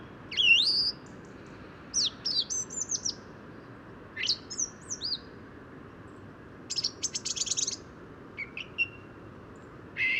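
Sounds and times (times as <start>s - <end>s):
song thrush singing at daybreak in Bois de Vincennes in mild weather: 0.0s - 3.3s, 4.2s - 5.3s, 6.7s - 10.1s.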